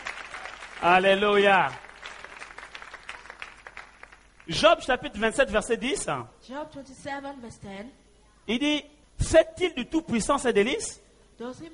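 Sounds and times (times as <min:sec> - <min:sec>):
church congregation clapping: 0:00.0 - 0:05.0
speech: 0:00.8 - 0:01.8, 0:04.5 - 0:11.7.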